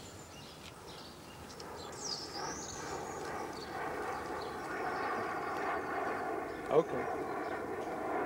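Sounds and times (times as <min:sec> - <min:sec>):
Boeing 707 jet airliner flying overhead: 0:00.8 - 0:08.2
speech: 0:06.8 - 0:07.4.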